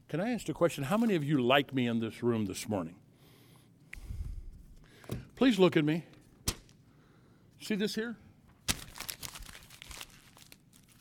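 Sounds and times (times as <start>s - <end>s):
speech: 0.1s - 3.0s, 5.4s - 6.2s, 7.6s - 8.2s
paper crumpling: 8.5s - 10.9s.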